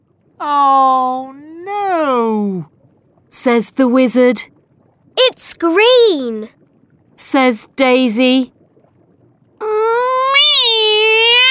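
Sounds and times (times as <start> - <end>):
speech: 0.4 - 2.7, 3.3 - 4.6, 5.2 - 6.6, 7.2 - 8.6
cat long drawn-out meow: 9.6 - 11.4.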